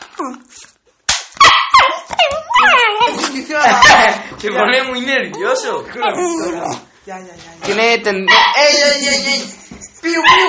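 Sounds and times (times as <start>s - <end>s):
speech: 0.2s - 0.7s, 3.0s - 10.4s
guest dog barking: 1.4s - 2.9s, 3.8s - 4.2s, 8.3s - 8.8s, 10.2s - 10.4s
guest dog whining and whimpering: 1.8s - 3.2s, 5.0s - 6.8s.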